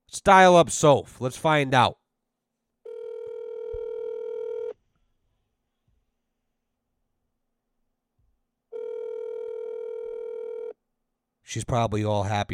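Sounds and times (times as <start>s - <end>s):
speech: 0.1s - 2.0s, 11.6s - 12.5s
telephone ringing tones down a phone line: 2.8s - 4.8s, 8.7s - 10.8s.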